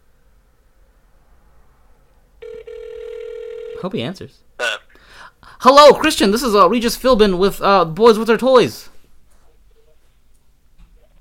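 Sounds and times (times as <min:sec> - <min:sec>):
telephone call ringing: 0:02.4 - 0:03.9
speech: 0:03.8 - 0:04.8, 0:05.6 - 0:08.9.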